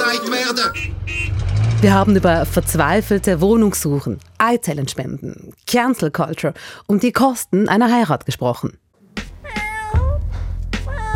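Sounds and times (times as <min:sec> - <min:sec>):
speech: 0:00.2 - 0:01.1, 0:01.8 - 0:08.8
low rumble: 0:00.8 - 0:05.4
cat meowing: 0:09.4 - 0:10.2.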